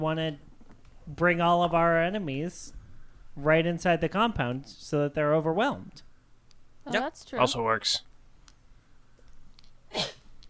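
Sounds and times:
speech: 0:00.0 - 0:00.5, 0:01.1 - 0:02.8, 0:03.4 - 0:06.1, 0:06.8 - 0:08.1, 0:09.9 - 0:10.2
quick sharp sneeze: 0:09.9 - 0:10.2.

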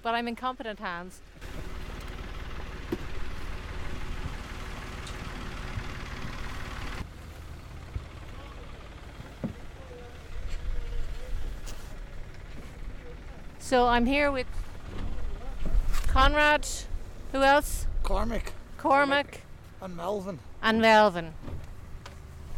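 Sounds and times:
speech: 0:00.0 - 0:01.6, 0:13.7 - 0:14.6, 0:16.2 - 0:21.4
boat engine droning at night in the rain: 0:01.3 - 0:17.6.

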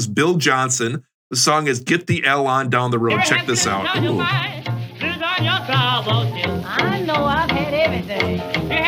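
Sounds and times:
speech: 0:00.0 - 0:04.7, 0:05.4 - 0:08.8
wavering jazz horn lines: 0:03.0 - 0:08.8
crackle of an old jazz recording: 0:03.1 - 0:08.8.

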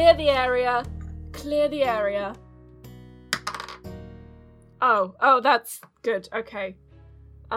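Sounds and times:
speech: 0:00.0 - 0:02.5, 0:04.8 - 0:06.8
ten-sided die rolling on a hard tabletop: 0:03.4 - 0:03.8.

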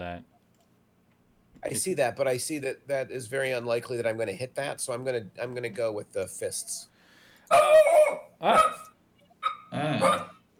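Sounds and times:
speech: 0:01.6 - 0:06.9, 0:07.5 - 0:08.9, 0:09.7 - 0:10.3
dog barking: 0:07.5 - 0:10.4.

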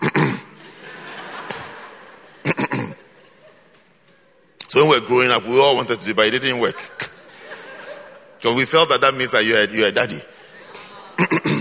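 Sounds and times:
voice imitating throat clearing with gruff raspy bursts: 0:00.0 - 0:00.6, 0:02.4 - 0:03.0, 0:11.2 - 0:11.5
laughter: 0:00.4 - 0:04.5, 0:05.2 - 0:11.5
speech: 0:04.8 - 0:07.1, 0:08.4 - 0:10.3, 0:11.2 - 0:11.5.

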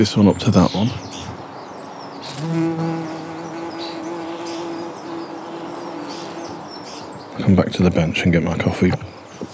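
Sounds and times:
speech: 0:00.0 - 0:01.1, 0:07.4 - 0:09.2
faint birds chirping: 0:00.0 - 0:09.5
bees buzzing close to the microphone: 0:02.2 - 0:07.3.

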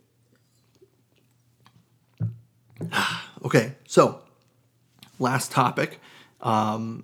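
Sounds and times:
person sipping wine: 0:02.2 - 0:03.4
speech: 0:03.5 - 0:04.2, 0:05.2 - 0:07.0.

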